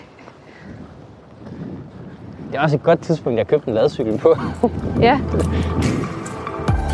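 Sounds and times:
wind buffeting the microphone on a windy day: 0.0s - 6.8s
speech: 2.5s - 6.3s.

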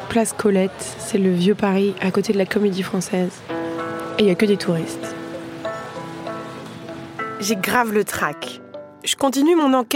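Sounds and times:
speech: 0.1s - 3.6s, 4.2s - 5.2s, 7.4s - 9.9s
steady rain falling on an outdoor café terrace: 2.1s - 7.8s.

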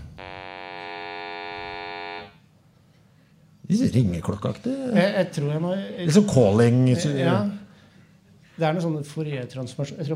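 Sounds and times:
sonified hum of early-universe sound waves: 0.0s - 2.5s
speech: 3.7s - 7.6s, 8.6s - 10.1s.

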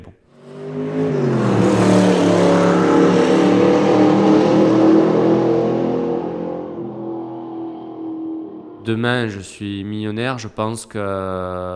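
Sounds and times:
petrol car engine revving: 0.3s - 9.6s
speech: 8.9s - 11.7s.

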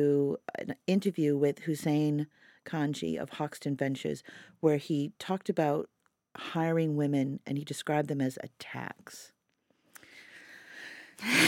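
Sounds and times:
speech: 0.0s - 9.4s, 11.2s - 11.4s
big breath in: 10.0s - 11.4s.

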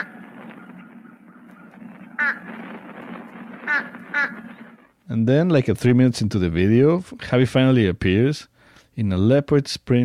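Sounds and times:
fish crow giving short nasal calls: 0.0s - 4.9s
steady low rumble of noise: 0.0s - 6.8s
speech: 2.2s - 2.8s, 3.7s - 10.0s.

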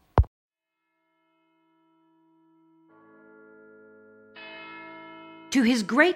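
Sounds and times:
heavy clock bell striking the hours: 1.3s - 6.1s
speech: 5.5s - 6.1s.

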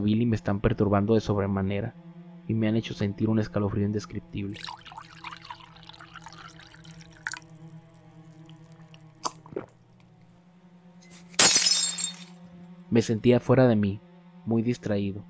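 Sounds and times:
speech: 0.0s - 5.1s, 12.9s - 15.2s
low steady hum: 4.1s - 13.3s
glass shattering: 11.1s - 12.4s
faint glass clinks: 11.4s - 12.3s.

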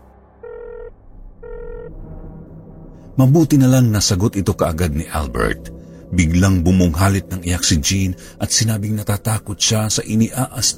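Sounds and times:
ringback tones from an outgoing phone call: 0.4s - 1.9s
speech: 3.2s - 10.7s.

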